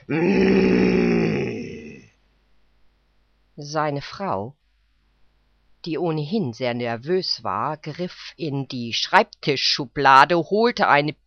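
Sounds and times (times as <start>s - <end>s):
deep human voice imitating a lion's threatening roar: 0.0s - 2.2s
speech: 0.1s - 0.8s, 3.6s - 4.6s, 5.8s - 11.2s.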